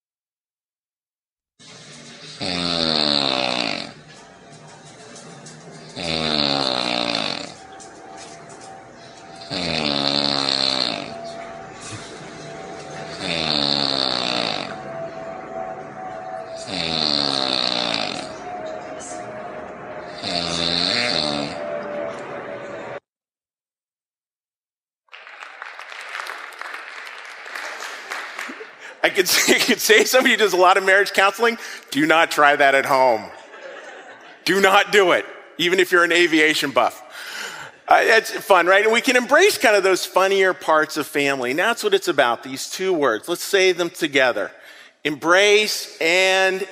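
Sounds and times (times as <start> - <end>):
woman snoring while asleep: 2.3 - 4.0, 6.0 - 7.6, 9.4 - 11.2, 13.1 - 14.9, 16.6 - 18.5, 20.1 - 21.8
laughter: 27.6 - 30.6, 33.0 - 35.1
speech: 29.2 - 33.4, 34.4 - 37.0, 38.0 - 46.7.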